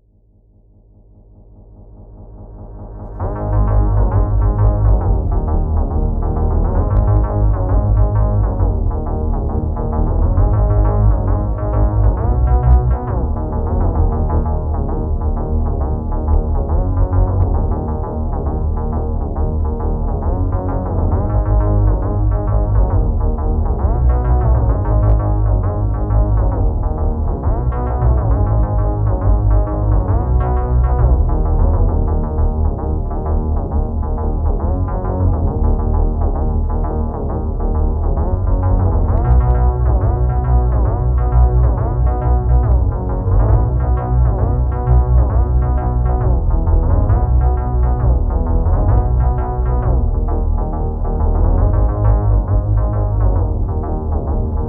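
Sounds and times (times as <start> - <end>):
processed bass: 1.5 - 54.6.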